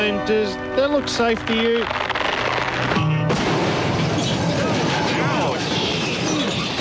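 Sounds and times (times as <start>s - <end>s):
speech: 0.1s - 2.1s
explosion of a giant television at an award ceremony: 2.2s - 6.8s.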